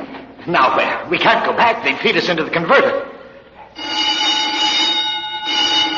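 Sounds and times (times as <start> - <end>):
speech: 0.5 - 3.1
alarm blaring a shrill ringing tone: 3.8 - 5.9.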